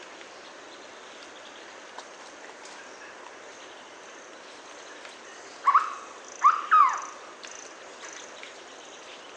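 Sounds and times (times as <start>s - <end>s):
Hooded berryeater Carpornis cucullata call: 5.6s - 7.2s.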